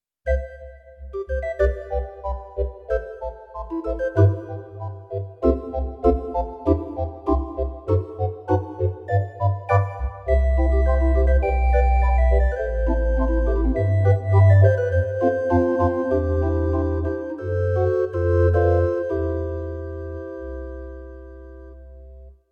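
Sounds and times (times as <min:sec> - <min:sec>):
church organ sounds on a digital accordion: 0:00.3 - 0:22.3.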